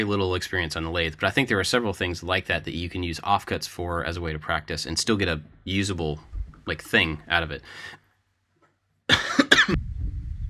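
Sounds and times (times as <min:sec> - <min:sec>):
speech: 0:00.0 - 0:08.0, 0:09.1 - 0:09.8
faint low rustling: 0:02.6 - 0:07.7, 0:09.7 - 0:10.4
man coughing to clear his throat: 0:09.1 - 0:09.8.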